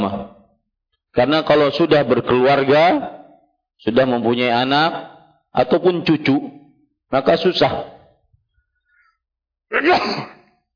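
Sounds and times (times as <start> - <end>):
speech: 1.2 - 3.2, 3.8 - 7.9, 9.7 - 10.4
sneeze: 9.7 - 10.6.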